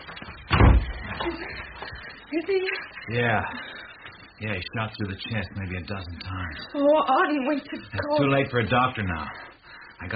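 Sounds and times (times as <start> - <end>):
door pushed shut with a heavy thud: 0.5 - 1.0
speech: 2.3 - 3.7, 4.4 - 10.1.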